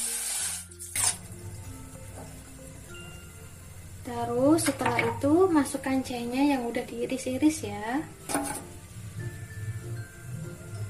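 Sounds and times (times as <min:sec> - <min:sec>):
water poured into a cooking pot for a honey and ginger drink: 0:00.0 - 0:01.4
speech: 0:04.1 - 0:08.2.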